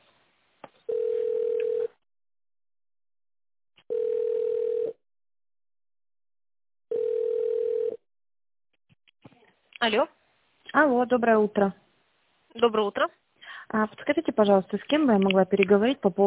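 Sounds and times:
telephone ringback tone while a call is being transferred: 0.9s - 1.9s, 3.9s - 5.0s, 6.9s - 8.0s
speech: 9.8s - 11.8s, 12.5s - 16.2s.

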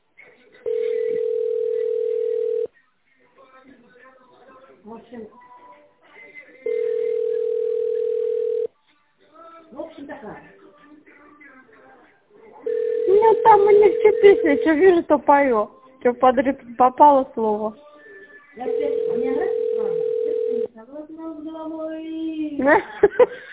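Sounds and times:
telephone dial tone while a number is being dialled: 0.7s - 2.7s, 6.7s - 8.7s, 12.7s - 14.4s, 18.8s - 20.7s
speech: 14.4s - 17.8s, 18.6s - 19.6s, 20.8s - 23.5s
laughter: 22.6s - 23.5s.

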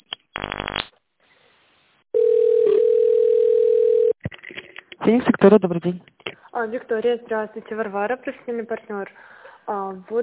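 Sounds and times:
telephone dial tone while placing a call: 2.2s - 4.2s
speech: 5.1s - 10.2s.

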